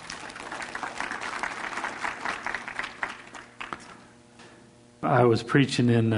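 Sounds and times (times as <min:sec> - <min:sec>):
audience applauding a woman: 0:00.0 - 0:04.0
loud individual claps: 0:00.0 - 0:04.0
speech: 0:05.0 - 0:06.1.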